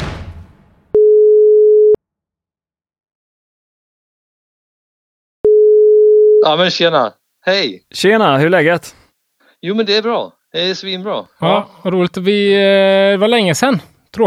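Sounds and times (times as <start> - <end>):
telephone ringback tone while calling someone: 0.9 - 2.0, 5.5 - 6.5
speech: 6.5 - 9.0, 9.6 - 14.2.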